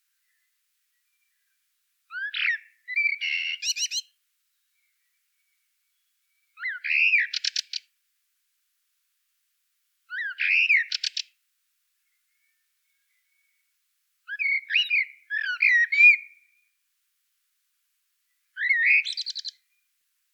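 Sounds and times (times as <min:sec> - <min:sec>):
common blackbird Turdus merula singing: 0:00.0 - 0:07.9, 0:10.1 - 0:11.4, 0:12.0 - 0:16.8, 0:18.3 - 0:20.0.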